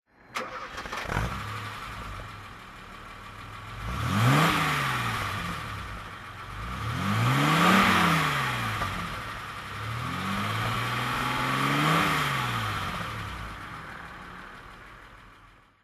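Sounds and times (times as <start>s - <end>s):
Mercedes Benz 220SE W111 convertible engine throttle: 0.4s - 15.6s.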